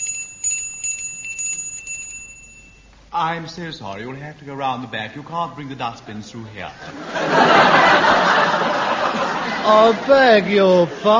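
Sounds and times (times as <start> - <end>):
shop bell ringing: 0.0 - 2.9
speech: 3.2 - 11.1
laughter: 6.7 - 11.1.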